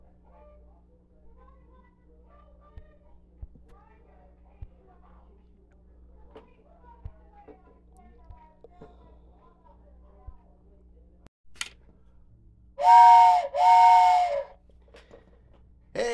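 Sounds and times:
train whistle blasts: 12.8s - 14.6s.

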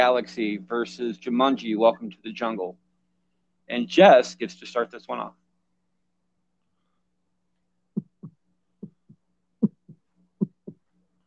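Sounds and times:
speech: 0.0s - 2.8s, 3.7s - 5.4s
faint low hum: 0.0s - 11.2s
deep lub-dub heartbeat thumps: 8.0s - 10.9s.

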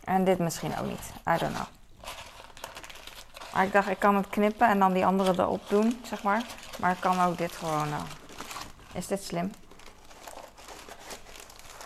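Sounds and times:
speech: 0.1s - 2.2s, 3.6s - 8.2s, 9.0s - 9.6s
cardboard egg carton being bent by hand: 0.5s - 11.8s.

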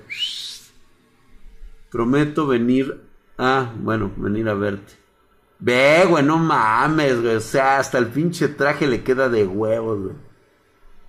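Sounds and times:
short bright confirming whistle rising in pitch: 0.0s - 0.7s
speech: 1.9s - 5.0s, 5.6s - 10.3s.

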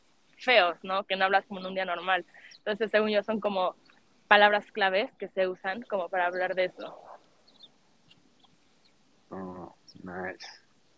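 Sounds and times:
background hiss: 0.0s - 4.6s, 5.7s - 10.9s
speech: 0.4s - 7.1s, 9.3s - 10.6s
small birds chirping: 1.4s - 4.6s, 5.6s - 10.6s.

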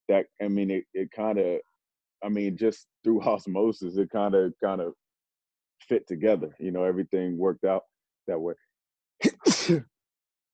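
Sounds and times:
speech: 0.1s - 5.0s, 5.8s - 8.6s, 9.2s - 9.9s
person sneezing: 9.2s - 9.8s.

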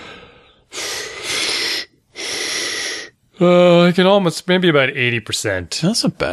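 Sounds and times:
deep raspy breath drawn in with thin whistling wheeze: 0.0s - 3.2s
speech: 3.4s - 6.3s.

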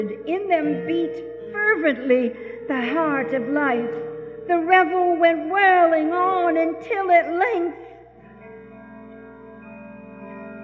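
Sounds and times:
speech: 0.0s - 7.9s
clock striking midnight: 2.8s - 7.5s.

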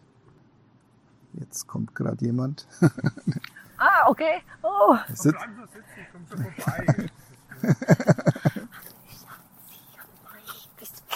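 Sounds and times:
speech: 1.4s - 8.2s
laughter: 2.7s - 3.7s, 5.2s - 9.3s
dog panting during greeting: 8.2s - 11.1s.

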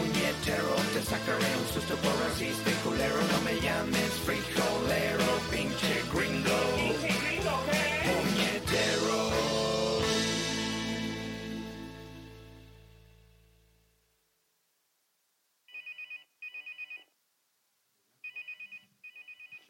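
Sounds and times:
music: 0.0s - 13.8s
phone ringtone trilling in short electronic bursts: 15.7s - 17.1s, 18.2s - 19.6s.

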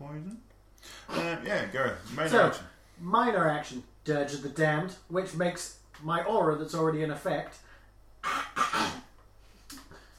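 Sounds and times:
speech: 1.1s - 8.9s
person coughing: 8.2s - 9.1s.

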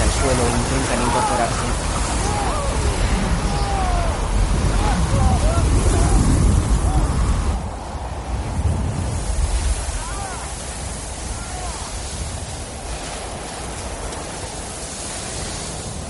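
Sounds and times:
gale-force wind with gusts of snow on an exposed Everest mountain slope: 0.0s - 16.0s
speech: 0.2s - 2.4s.

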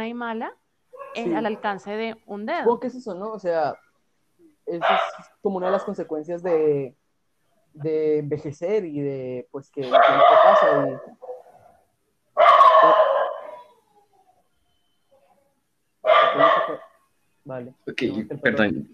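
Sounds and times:
dog barking loudly in drawn-out bursts: 1.0s - 1.8s, 4.8s - 6.1s, 9.8s - 11.8s, 12.4s - 13.7s, 16.0s - 17.0s
speech: 1.2s - 3.8s, 4.7s - 6.9s, 7.8s - 11.1s, 17.5s - 18.9s.

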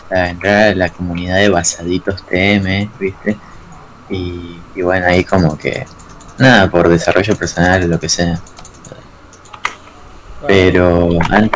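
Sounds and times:
speech: 0.1s - 3.5s, 4.1s - 8.6s, 10.4s - 11.5s
computer keyboard typing: 5.1s - 9.8s.

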